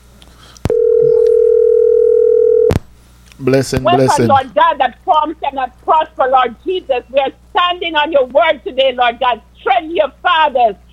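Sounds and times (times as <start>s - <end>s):
telephone dial tone after dropped call: 0.7s - 2.7s
phone line click: 0.7s - 2.8s
speech: 3.4s - 10.8s.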